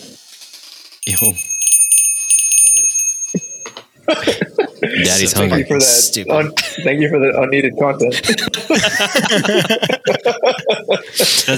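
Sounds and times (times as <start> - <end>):
speech: 1.0 - 1.6, 4.1 - 11.5
bell ringing with a rapid metallic clatter: 1.0 - 3.9
laughter: 8.1 - 11.5.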